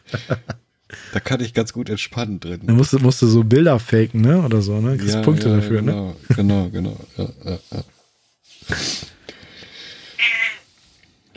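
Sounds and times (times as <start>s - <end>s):
laughter: 0.0s - 0.6s, 5.2s - 8.0s
speech: 0.1s - 0.5s, 1.2s - 8.0s, 8.7s - 9.1s
cat meowing: 10.2s - 10.7s.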